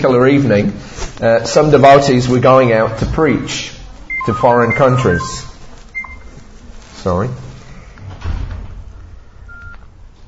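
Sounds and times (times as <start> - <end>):
speech: 0.0 - 5.5, 7.0 - 7.4
mobile phone giving short electronic beeps: 4.1 - 6.3, 9.5 - 9.8.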